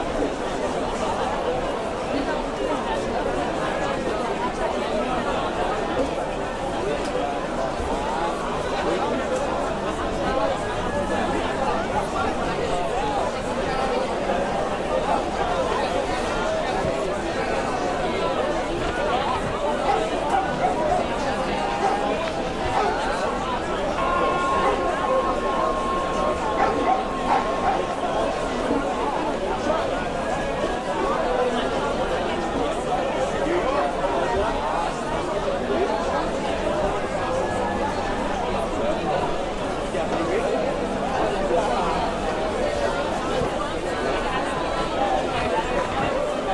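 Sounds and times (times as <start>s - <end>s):
noise of people in an old town: 0.0s - 46.5s.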